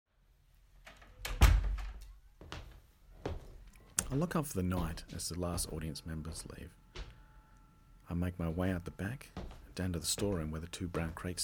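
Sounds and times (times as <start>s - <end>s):
door swinging shut with a heavy thud: 1.2s - 2.0s
speech: 4.1s - 6.8s, 8.1s - 11.4s.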